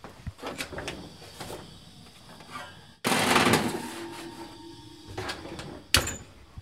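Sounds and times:
pan of oats and nuts sliding into oven: 2.4 - 5.9
oven door opening with a clatter: 2.6 - 6.3
oven door shutting with a sharp thump: 3.0 - 6.3.

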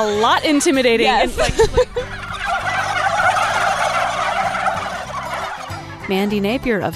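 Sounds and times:
speech: 0.0 - 2.2, 6.1 - 6.9
flock of turkeys gobbling at a farm: 0.1 - 6.9
laughter: 1.0 - 2.5.

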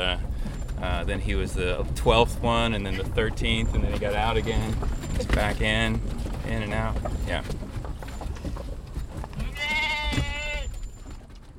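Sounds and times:
speech: 0.0 - 7.6
low rumble: 0.0 - 11.5
single sheep bleating: 9.4 - 10.8.

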